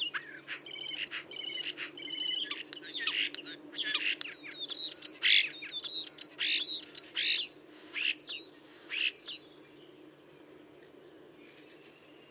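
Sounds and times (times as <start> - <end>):
common starling giving squeaky grating notes and whistled squeals: 0.0 - 9.4.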